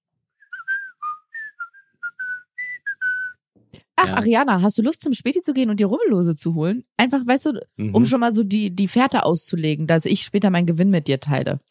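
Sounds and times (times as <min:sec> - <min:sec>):
person whistling a playful melody: 0:00.4 - 0:03.4
speech: 0:04.0 - 0:11.6.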